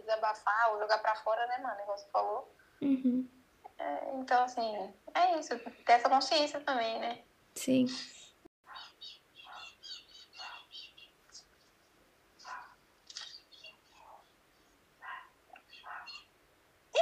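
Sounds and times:
speech: 0:00.1 - 0:08.2
birds chirping and twittering in the sertão: 0:08.0 - 0:16.4.

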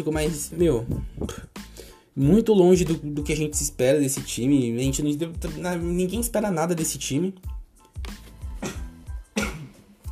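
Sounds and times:
speech: 0:00.0 - 0:01.6, 0:02.2 - 0:08.2
sneeze: 0:08.6 - 0:09.8.

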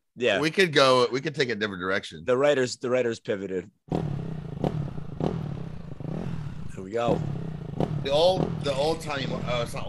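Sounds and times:
speech: 0:00.2 - 0:04.1, 0:06.9 - 0:07.4, 0:08.0 - 0:09.8
motorcycle engine idling: 0:03.9 - 0:09.8.

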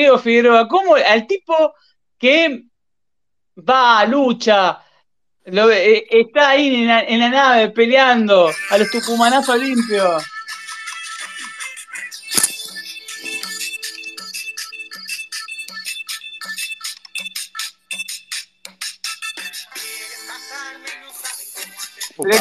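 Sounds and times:
speech: 0:00.0 - 0:02.7, 0:03.6 - 0:04.8, 0:05.5 - 0:10.4, 0:22.2 - 0:22.4
bright busy electronic-sounding music from a device: 0:08.5 - 0:22.4.

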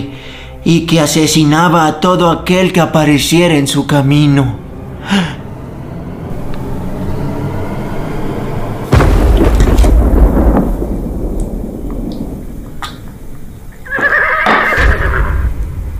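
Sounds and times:
speech: 0:00.0 - 0:05.4
heavy thunder rumbling: 0:06.0 - 0:15.9
steady rain: 0:08.9 - 0:14.4
horse neighing: 0:13.8 - 0:15.4.

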